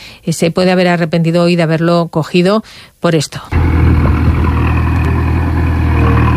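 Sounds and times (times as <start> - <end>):
speech: 0.2 - 4.0
excavator engine idling at a roundabout worksite: 3.6 - 6.3.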